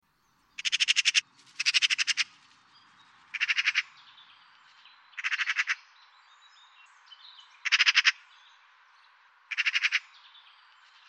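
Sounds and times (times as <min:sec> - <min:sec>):
Eurasian magpie chattering: 0:00.6 - 0:02.4, 0:03.3 - 0:03.9, 0:05.2 - 0:05.8, 0:07.6 - 0:08.2, 0:09.5 - 0:10.1.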